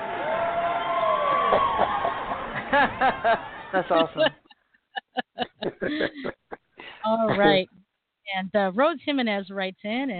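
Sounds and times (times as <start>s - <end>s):
crowd cheering: 0.0s - 4.4s
laughter: 1.4s - 7.6s
speech: 2.7s - 4.4s, 5.8s - 6.4s, 7.1s - 10.1s.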